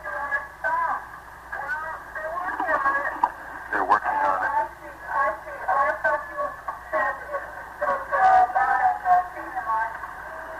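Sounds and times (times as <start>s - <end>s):
radio static hiss: 0.0s - 10.5s
garbled tinny voices in a radio transmission: 1.8s - 4.8s.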